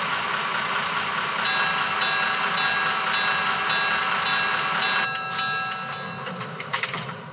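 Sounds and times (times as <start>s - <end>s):
passenger train arriving at station: 0.0s - 7.3s
clanks of passenger train: 1.5s - 7.3s.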